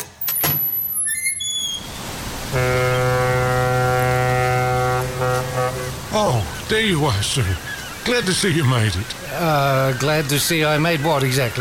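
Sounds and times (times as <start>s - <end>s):
door creaking open: 0.0s - 2.0s
horn of a ship about to sail: 2.4s - 6.6s
speech: 6.7s - 11.5s.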